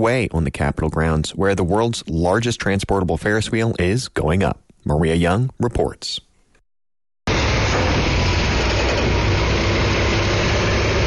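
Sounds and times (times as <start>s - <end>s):
speech: 0.0s - 6.3s
diesel 18-wheeler truck engine idling: 7.3s - 11.0s.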